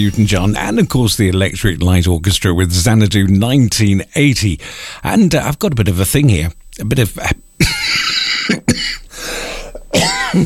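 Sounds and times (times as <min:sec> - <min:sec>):
speech: 0:00.0 - 0:08.6
person coughing: 0:07.6 - 0:10.4
throat-clearing: 0:07.6 - 0:10.4.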